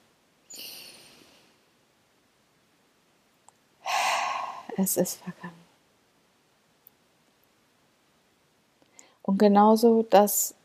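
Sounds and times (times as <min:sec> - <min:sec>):
louder rushing exhale: 0:03.8 - 0:04.8
slow airy breath drawn in close to the mic: 0:03.8 - 0:04.9
speech: 0:04.8 - 0:05.6, 0:09.4 - 0:10.6.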